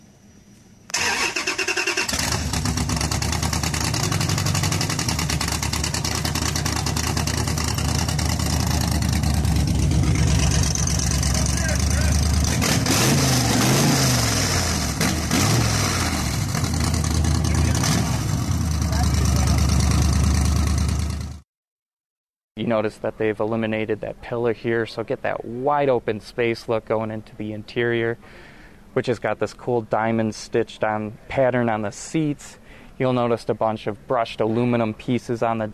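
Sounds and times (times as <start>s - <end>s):
car with 392 Hemi engine and side pipes cranking and firing up: 0.9s - 21.4s
392 Hemi engine deep rumbling idle through exhaust cutouts: 2.1s - 13.0s, 16.0s - 21.4s
speech: 22.7s - 35.7s.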